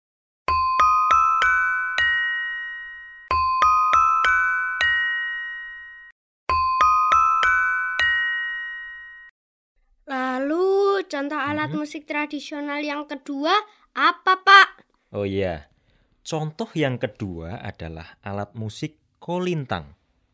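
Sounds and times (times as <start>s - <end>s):
saron gamelan metallophone played: 0.5s - 9.3s
speech: 11.1s - 20.0s.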